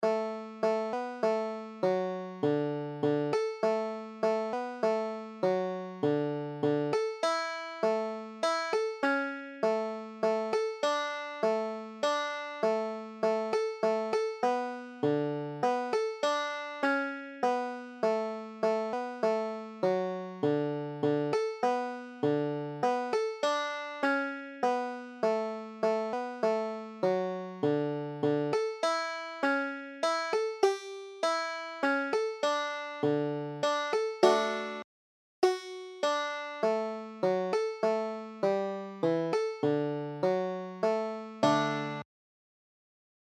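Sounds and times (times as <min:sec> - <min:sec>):
banjo playing a Christmas carol in Double C tuning: 0:00.0 - 0:42.1.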